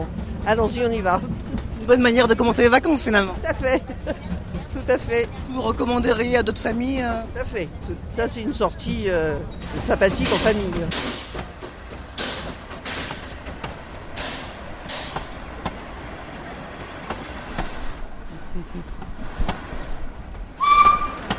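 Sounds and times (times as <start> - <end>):
train rumbling: 0.0 - 21.3
speech: 0.4 - 4.3, 4.9 - 11.2
laughter: 3.5 - 4.6, 18.2 - 19.1
steam locomotive hissing: 9.5 - 18.4, 19.2 - 21.3.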